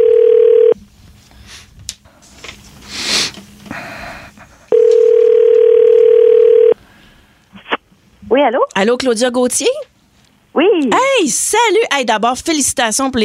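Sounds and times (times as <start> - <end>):
telephone ringing tone heard down the line: 0.0 - 0.8, 4.7 - 6.8
speech: 8.5 - 9.8, 10.6 - 13.2.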